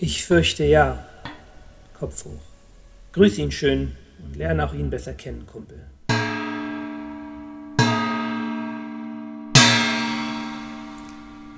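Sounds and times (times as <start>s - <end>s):
speech: 0.0s - 1.1s, 2.0s - 2.5s, 3.1s - 6.0s
deep clock bell striking: 6.1s - 11.5s.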